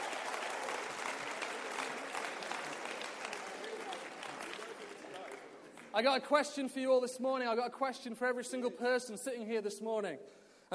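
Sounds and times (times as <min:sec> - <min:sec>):
large crowd applauding: 0:00.0 - 0:06.1
speech: 0:06.0 - 0:10.7.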